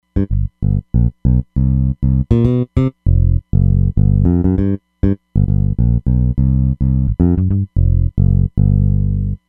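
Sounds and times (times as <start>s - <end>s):
Roland Fantom XR fingered bass synth: 0.1s - 9.4s.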